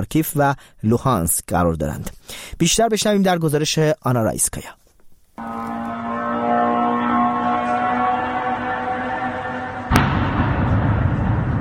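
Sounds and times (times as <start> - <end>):
speech: 0.0 - 4.8
Iranian-made suicide drone engine whining at night: 5.4 - 11.5
rumbling, noisy explosion aftermath: 5.4 - 11.5
suicide drone explosion: 9.9 - 11.5.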